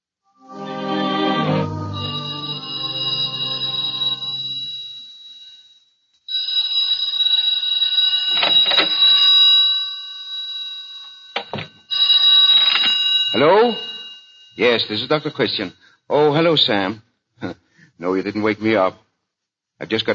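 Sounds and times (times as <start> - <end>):
telephone bell ringing: 1.4 - 15.7
speech: 14.6 - 19.0, 19.8 - 20.1.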